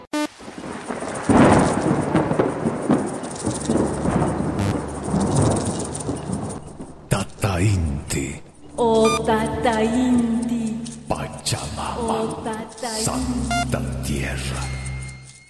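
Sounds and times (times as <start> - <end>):
steady heavy rain falling: 0.2 - 15.4
low rumbling thunder: 0.4 - 9.7.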